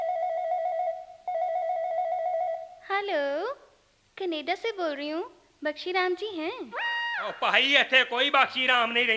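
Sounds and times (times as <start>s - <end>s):
newly installed landline telephone ringing in a village home: 0.0s - 2.8s
speech: 3.0s - 9.1s.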